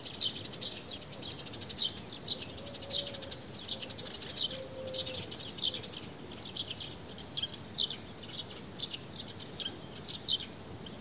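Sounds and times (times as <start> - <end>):
House sparrow Passer domesticus chirping: 0.0 - 10.9
steady background hiss: 0.0 - 10.9.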